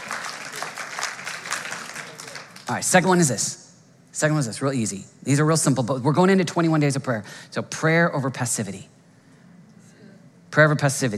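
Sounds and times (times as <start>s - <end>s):
crowd applauding: 0.0s - 2.7s
speech: 2.7s - 3.6s, 4.2s - 9.0s, 10.6s - 11.1s.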